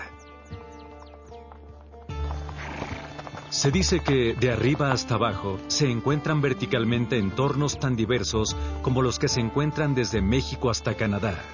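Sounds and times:
pack mule hooves clopping: 0.0s - 6.6s
speech: 3.5s - 11.5s.

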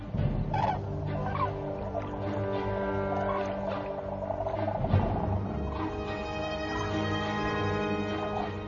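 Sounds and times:
flock of common cranes calling in alarm at a white-tailed eagle: 0.4s - 8.6s.

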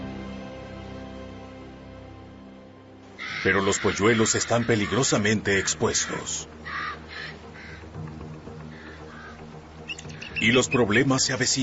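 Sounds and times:
common raven croaking calls: 3.2s - 11.5s
speech: 3.4s - 6.7s, 10.4s - 11.6s.

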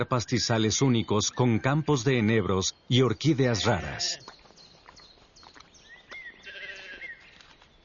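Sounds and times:
speech: 0.0s - 4.3s
sheep bleating while grazing on lush pasture by the eastern shore of the Müritz: 3.5s - 4.2s, 6.4s - 7.2s.

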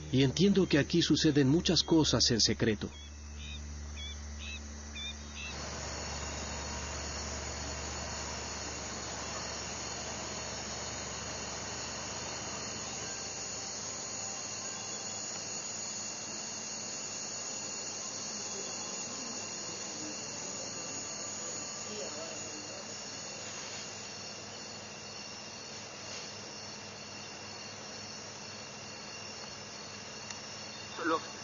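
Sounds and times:
speech: 0.1s - 3.0s
small propeller plane engine droning at dusk: 5.5s - 14.4s.

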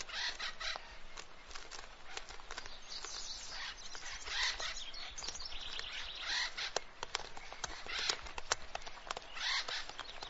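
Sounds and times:
acorn woodpeckers chattering: 0.0s - 10.2s.

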